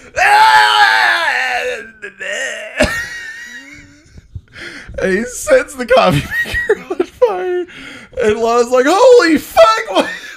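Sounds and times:
man imitating a screaming goat: 0.2 - 2.8
speech: 5.0 - 6.9, 8.2 - 10.1
laughter: 6.1 - 7.6.

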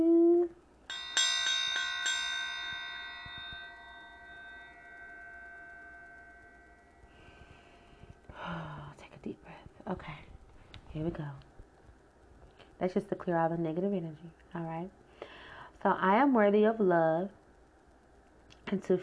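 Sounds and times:
small bell ringing: 0.8 - 8.2
breathy voice: 7.1 - 9.0
speech: 9.9 - 10.2, 10.9 - 11.5, 12.8 - 15.0, 15.8 - 17.4, 18.7 - 19.0.

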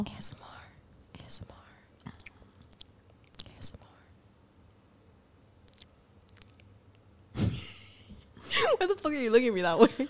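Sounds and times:
speech: 0.0 - 0.5, 1.3 - 1.6, 8.8 - 10.0
wet lip smacking: 2.0 - 3.6, 5.6 - 7.0.

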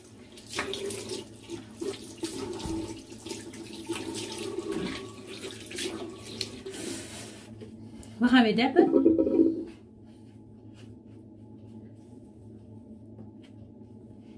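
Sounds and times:
tap water running while something is rinsed: 0.0 - 7.3
speech: 8.2 - 9.5.

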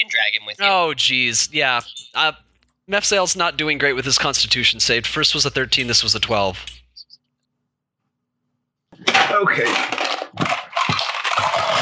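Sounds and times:
speech: 0.0 - 6.8, 9.0 - 10.6
big handful of dice clattering and rattling across a hard surface: 9.6 - 11.8.

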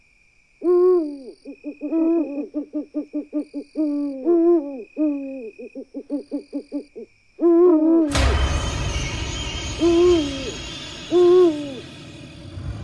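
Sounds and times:
owl hooting: 0.6 - 8.2, 9.8 - 11.8.

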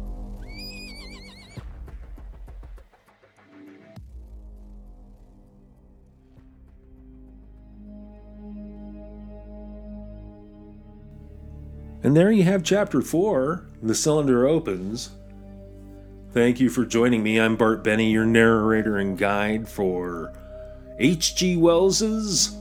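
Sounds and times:
horse neighing: 0.4 - 1.7
steady low droning tone: 8.2 - 22.6
speech: 12.0 - 15.2, 16.4 - 20.4, 21.0 - 22.6.

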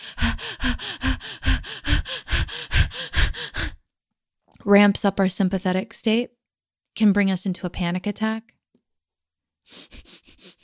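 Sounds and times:
fast panting breathing through the mouth: 0.0 - 3.8, 9.7 - 10.6
speech: 4.7 - 6.4, 7.0 - 8.6.

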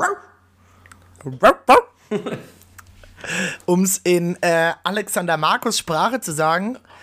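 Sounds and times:
speech: 1.2 - 2.6, 3.3 - 7.0
person imitating a dog barking: 1.3 - 2.0.

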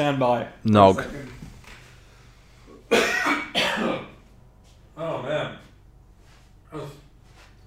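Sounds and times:
speech: 0.0 - 1.4
throat clearing: 2.7 - 4.2, 6.7 - 7.1
person coughing: 2.9 - 4.2.

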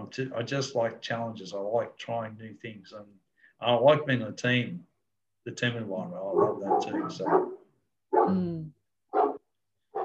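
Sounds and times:
speech: 0.1 - 9.2
mixed-breed dog barking: 6.3 - 8.3, 9.1 - 10.0.

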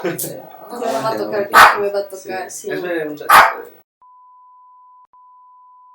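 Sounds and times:
speech: 0.0 - 3.8
small dog barking: 1.5 - 1.8, 3.3 - 3.7
small dog giving a whiny yelp: 3.3 - 3.6.

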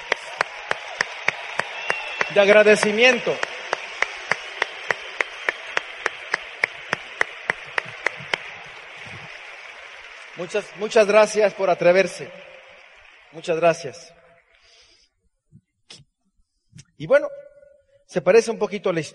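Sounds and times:
audience applause: 0.0 - 14.9
speech: 2.3 - 3.5, 10.4 - 12.4, 13.3 - 14.2, 17.0 - 17.4, 18.1 - 19.1.

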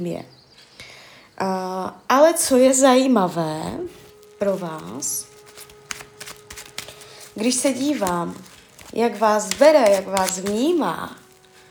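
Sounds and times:
speech: 0.0 - 0.4, 1.4 - 5.3, 7.4 - 11.2
tarot cards shuffling and drawing: 3.9 - 11.6.

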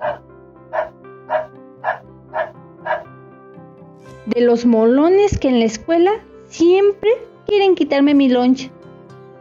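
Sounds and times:
dog barking: 0.0 - 3.1
speech: 4.3 - 8.8.

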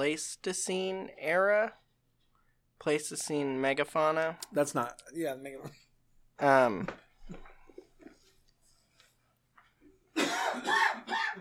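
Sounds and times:
speech: 0.0 - 1.8, 2.8 - 5.8, 6.4 - 7.5
man having a coughing fit: 10.1 - 11.3.

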